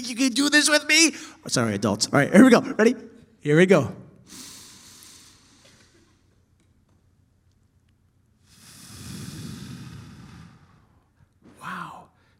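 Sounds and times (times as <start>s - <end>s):
speech: 0.0s - 4.4s
adults and children breathing in unison in a church: 4.3s - 6.3s, 8.4s - 11.3s.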